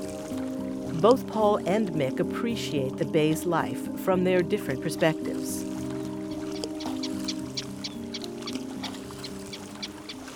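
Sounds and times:
speech: 1.0 - 5.7
flock of terns calling over a bay: 5.6 - 10.3.

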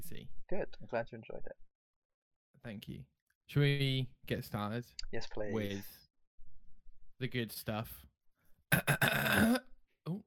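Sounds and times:
speech: 0.5 - 1.7, 2.6 - 6.0, 7.2 - 8.1, 8.7 - 9.7
loud throaty hiccup: 8.7 - 9.6
voiced gulp: 8.7 - 10.2.

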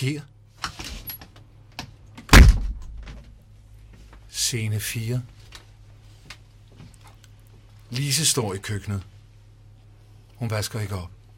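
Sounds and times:
speech: 0.0 - 0.3, 4.4 - 5.4, 7.9 - 9.1, 10.4 - 11.2
heavy door slamming shut: 2.3 - 3.2.

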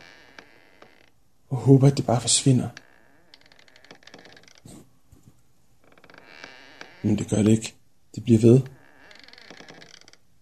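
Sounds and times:
drawn-out creaking in an apartment: 0.0 - 4.9, 5.8 - 10.3
speech: 1.5 - 2.9, 7.0 - 8.8.

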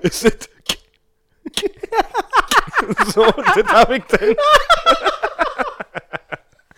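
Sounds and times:
speech: 0.0 - 0.5, 1.6 - 5.6
single sharp click: 0.6 - 1.8
voice imitating hard heavy keyboard typing with percussive mouth clacks: 0.6 - 1.8
laughter: 1.4 - 6.6.

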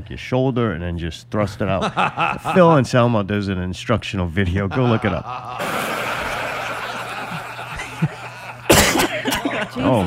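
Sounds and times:
speech: 0.0 - 6.0, 9.8 - 10.0
laughter: 1.7 - 2.8, 4.4 - 10.0
harsh cough spraying phlegm onto the microphone: 8.7 - 9.6.

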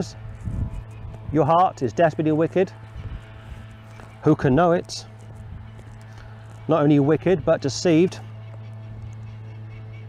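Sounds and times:
speech: 0.0 - 0.6, 1.3 - 2.8, 4.2 - 5.1, 6.7 - 8.3
tractor engine drone: 0.0 - 10.0
bird honking goose-like: 2.7 - 10.0.

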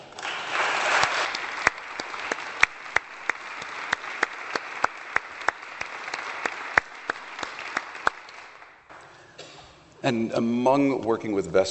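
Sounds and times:
audience applauding: 0.0 - 8.9
speech: 10.1 - 11.6.

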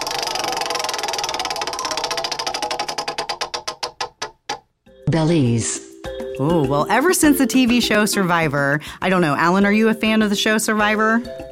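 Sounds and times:
prize wheel spinning and ticking: 0.0 - 4.6
speech: 5.1 - 11.4.

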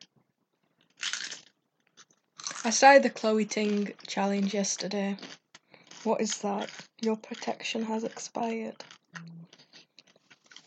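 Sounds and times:
crunchy bite and chew of food: 0.5 - 10.6
speech: 2.6 - 5.4, 6.0 - 9.4
faint mouth sounds: 9.1 - 9.9.

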